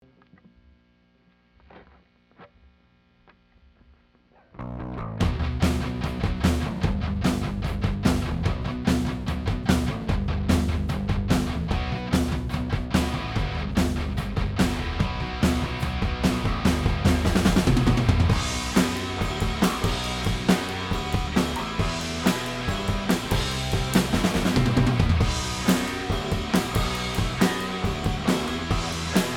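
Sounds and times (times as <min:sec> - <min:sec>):
drums: 0:04.6 - 0:29.3.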